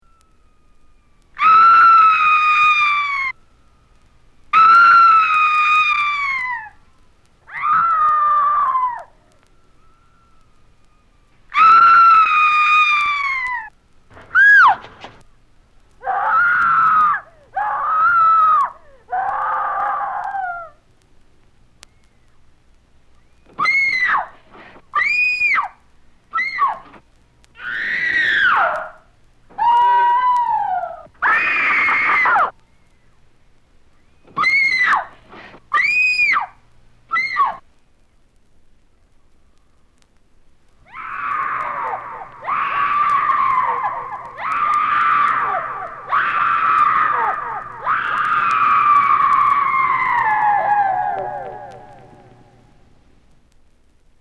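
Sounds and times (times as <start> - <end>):
people screaming: 0.0 - 15.2, 16.0 - 20.9, 23.4 - 27.0, 27.6 - 32.6, 34.2 - 37.6, 40.8 - 53.0.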